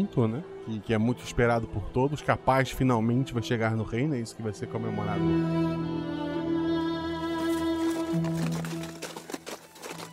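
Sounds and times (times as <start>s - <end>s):
speech: 0.0s - 6.2s
horse hooves clip-clopping on road: 7.4s - 10.1s.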